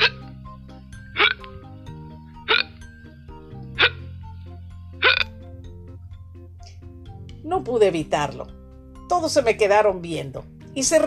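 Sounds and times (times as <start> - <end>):
soft music: 0.0 - 11.0
person hiccuping after eating very spicy food: 5.0 - 5.4
speech: 7.4 - 11.0.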